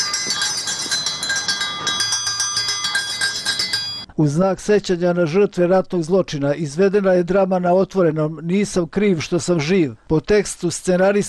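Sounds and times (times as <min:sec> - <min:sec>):
school bell ringing at a peace commemoration at Šumarice: 0:00.0 - 0:04.1
speech: 0:04.2 - 0:11.2.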